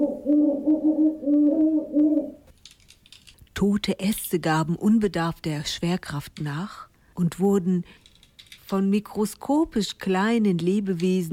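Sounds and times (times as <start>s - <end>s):
owl hooting at night: 0.0s - 2.5s
speech: 3.6s - 8.0s, 8.7s - 11.3s.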